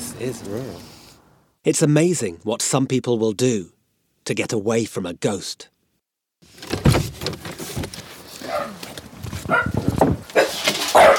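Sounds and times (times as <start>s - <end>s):
speech: 0.2s - 1.0s, 1.6s - 5.7s
shuffling noises: 7.0s - 11.1s
dog at an isolated rural house barking at visitors: 8.4s - 8.8s, 9.5s - 11.1s.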